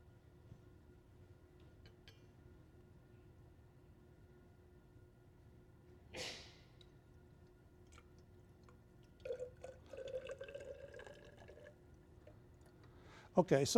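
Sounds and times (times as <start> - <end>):
low hum: 0.0 - 13.7
liquid pouring into a small vessel of a siphon apparatus: 7.9 - 12.9
speech: 13.4 - 13.7.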